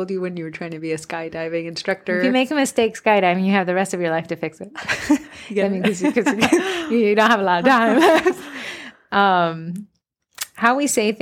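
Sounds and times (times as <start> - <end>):
speech: 0.0 - 9.9, 10.6 - 11.1
laughter: 4.8 - 8.7
person gasping: 8.4 - 9.0.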